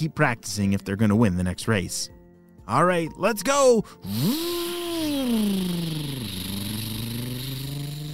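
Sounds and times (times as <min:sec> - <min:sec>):
speech: 0:00.0 - 0:04.7
dirt bike engines taking off: 0:04.1 - 0:08.1.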